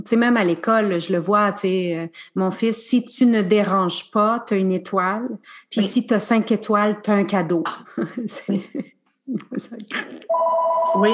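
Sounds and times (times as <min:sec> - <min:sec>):
speech: 0:00.0 - 0:11.1
mobile phone ringing with a steady electronic tone: 0:10.3 - 0:11.1.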